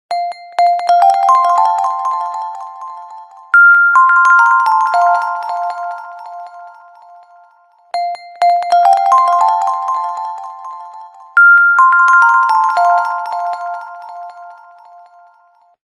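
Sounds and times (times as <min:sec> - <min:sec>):
phone ringtone: 0:00.1 - 0:15.8.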